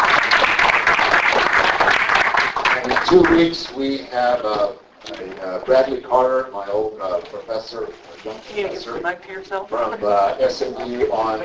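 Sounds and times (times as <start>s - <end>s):
audience applause with many hands clapping: 0.0s - 3.6s
speech: 3.1s - 11.4s.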